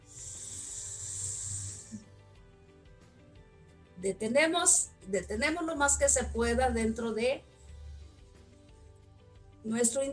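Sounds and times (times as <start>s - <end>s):
slow inhale through the nose during a breathing exercise: 0.0s - 2.3s
speech: 4.0s - 7.5s, 9.6s - 10.1s.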